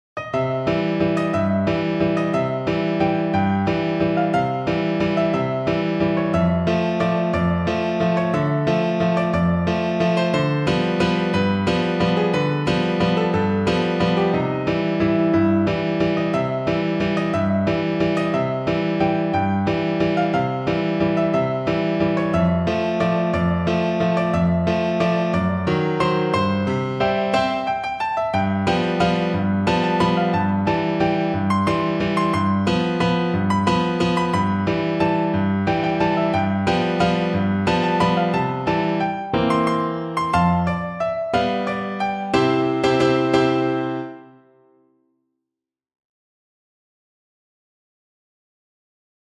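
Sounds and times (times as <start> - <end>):
piano piece: 0.2 - 45.0.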